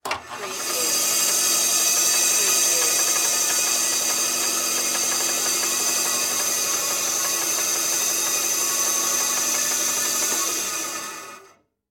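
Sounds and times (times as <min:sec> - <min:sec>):
band saw running off: 0:00.0 - 0:11.6.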